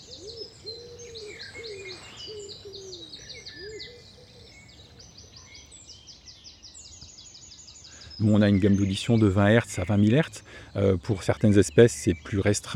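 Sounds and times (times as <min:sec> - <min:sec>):
common wood pigeon cooing: 0:00.0 - 0:04.6
smaller birds chirping and twittering: 0:00.0 - 0:12.7
speech: 0:08.2 - 0:12.7.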